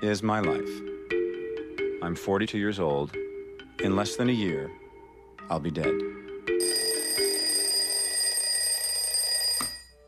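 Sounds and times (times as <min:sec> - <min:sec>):
speech: 0:00.0 - 0:00.9, 0:02.0 - 0:04.8, 0:05.5 - 0:06.2
alarm clock ringing with a bright metallic buzzing tone: 0:06.6 - 0:10.0
alarm clock click: 0:09.4 - 0:09.8.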